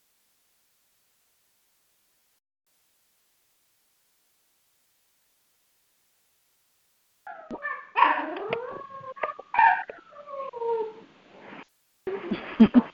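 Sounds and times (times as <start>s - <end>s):
puppy howling in high-pitched wails: 7.3s - 11.0s.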